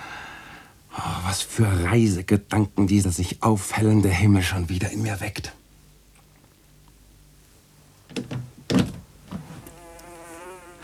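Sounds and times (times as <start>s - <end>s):
speech: 1.3s - 5.6s
soft thumps: 8.1s - 9.8s
housefly buzzing: 9.3s - 10.8s.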